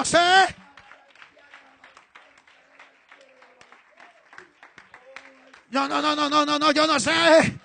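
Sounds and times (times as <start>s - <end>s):
speech: 0.0s - 0.6s, 5.7s - 7.6s
church audience applauding: 0.2s - 6.6s.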